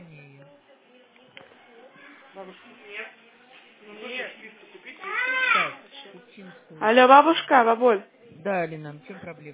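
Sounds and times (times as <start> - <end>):
speech: 2.4 - 3.2, 3.8 - 9.5
young child crying in a tantrum: 5.0 - 5.8.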